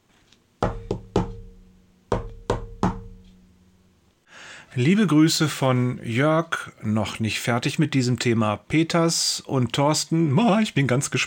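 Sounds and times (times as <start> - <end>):
firm resonant knocking on a door: 0.6 - 3.4
speech: 4.8 - 11.2.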